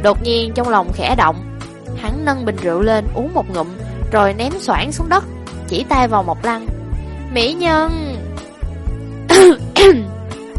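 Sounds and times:
speech: 0.0 - 8.2, 9.4 - 10.1
person coughing from choking on a mouthful of broccoli: 9.3 - 10.1.

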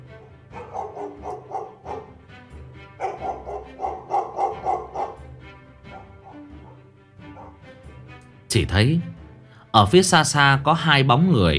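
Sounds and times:
dog barking: 0.1 - 2.2, 3.0 - 7.6
speech: 8.6 - 9.1, 9.7 - 11.5.

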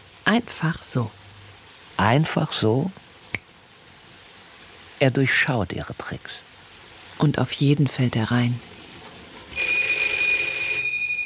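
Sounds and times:
speech: 0.3 - 1.2, 2.0 - 3.0, 5.0 - 6.5, 7.2 - 8.8
electronic telephone ringing in an office: 9.5 - 11.2.

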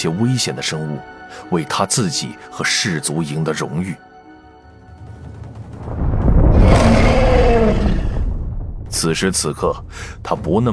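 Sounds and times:
speech: 0.0 - 4.1, 9.0 - 10.7
monstrous ogre roaring in a fantasy scene: 6.2 - 9.1.

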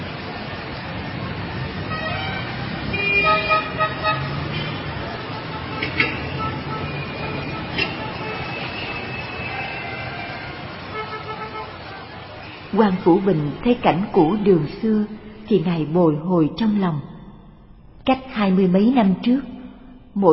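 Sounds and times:
horse-drawn carriages passing on a busy street at dusk: 0.0 - 13.8
cars passing on a busy street at dusk: 0.0 - 16.0
busy street traffic rumble at dusk: 0.0 - 19.5
car horns tooting: 1.9 - 13.2
speech: 12.8 - 17.1, 18.1 - 19.5, 20.2 - 20.3.

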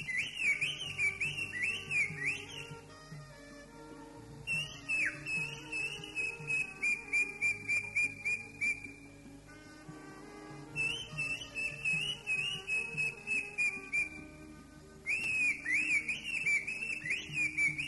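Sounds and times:
greater green leafbird singing: 0.0 - 2.9, 4.4 - 9.2, 10.8 - 14.3, 15.0 - 17.8.

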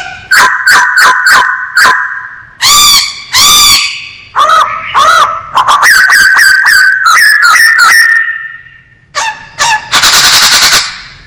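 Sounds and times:
masked laughingthrush singing: 0.0 - 10.9.

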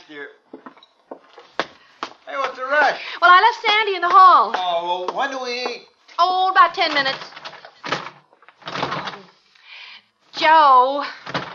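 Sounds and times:
speech: 0.1 - 0.5, 2.9 - 7.3, 10.4 - 11.2
wooden door swinging shut: 6.8 - 9.3, 11.2 - 11.5.

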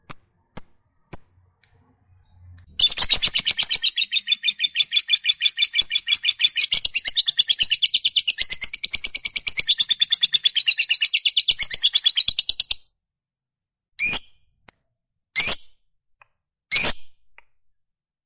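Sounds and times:
lovebird giving short sharp high chirps: 0.0 - 12.8
fighter-type lovebird giving long chattering: 2.8 - 12.8.

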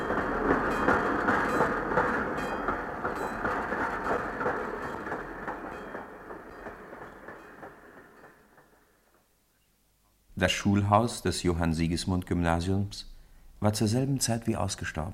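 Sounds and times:
train wheels clacking: 0.0 - 8.8
train pulling out of a station hall rumbling: 0.0 - 9.2
speech: 10.4 - 15.1.

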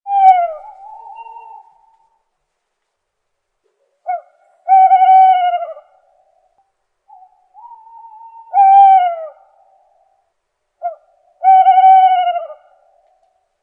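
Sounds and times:
bird giving paired hoots: 0.1 - 2.2, 4.0 - 6.5, 7.1 - 10.2, 10.8 - 13.0.

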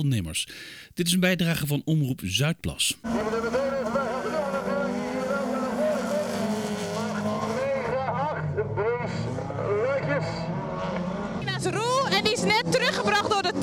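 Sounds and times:
speech: 0.0 - 3.6, 8.8 - 13.6
car engines roaring at a motor event: 3.0 - 13.6.

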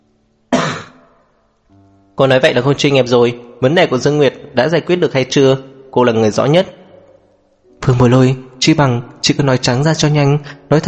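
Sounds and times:
woman clearing her throat: 0.5 - 1.1
speech: 2.2 - 6.8, 7.8 - 10.8.

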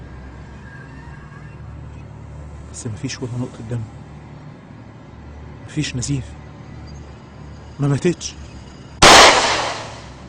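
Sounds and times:
speech: 2.8 - 4.0, 5.8 - 6.4, 7.8 - 8.4
gunshot at night: 9.0 - 10.2.

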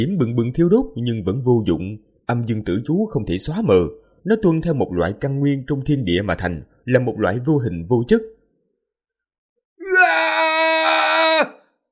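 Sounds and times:
speech: 0.0 - 8.4
man screaming loudly in pain: 9.8 - 11.7.

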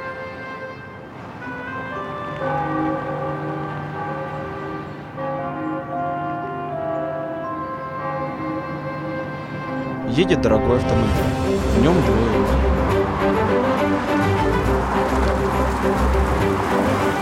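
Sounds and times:
church bells ringing over a city: 1.8 - 17.1
speech: 10.2 - 14.6.

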